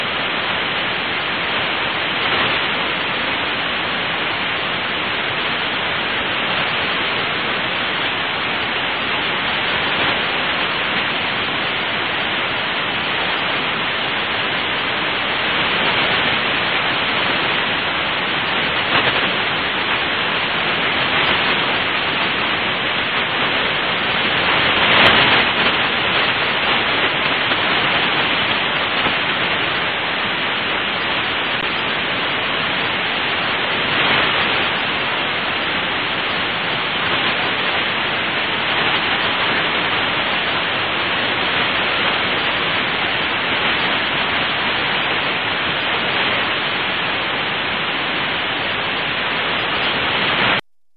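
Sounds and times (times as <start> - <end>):
Jupiter L burst HF radio emission: 0.0 - 50.6.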